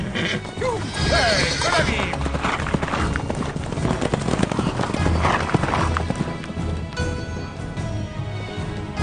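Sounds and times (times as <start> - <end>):
horse whinnying: 0.0 - 3.4
horses galloping as two riders race: 0.0 - 8.9.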